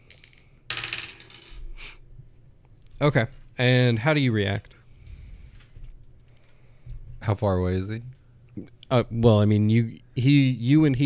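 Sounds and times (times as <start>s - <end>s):
three dice rolled across a hard surface: 0.0s - 1.7s
speech: 3.0s - 4.7s, 7.3s - 11.0s.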